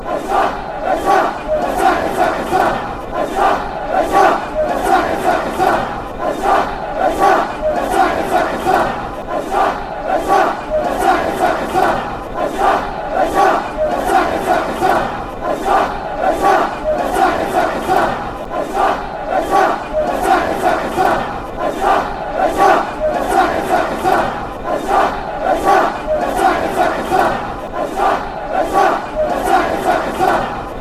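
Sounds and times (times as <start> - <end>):
football fans chanting: 0.0 - 30.7.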